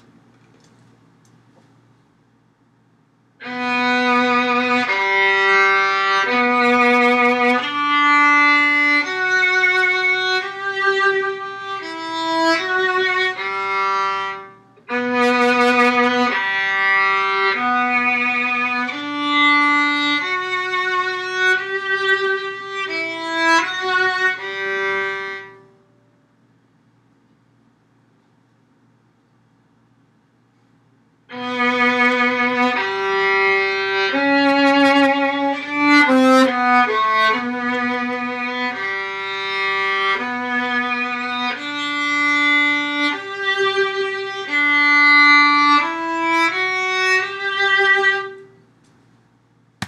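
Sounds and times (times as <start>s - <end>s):
cello playing a carol: 3.4s - 25.7s, 31.3s - 48.5s.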